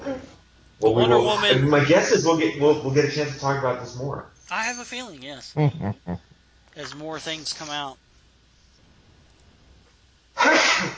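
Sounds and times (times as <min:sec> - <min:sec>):
speech: 0:00.8 - 0:08.0
person sneezing: 0:10.4 - 0:10.9.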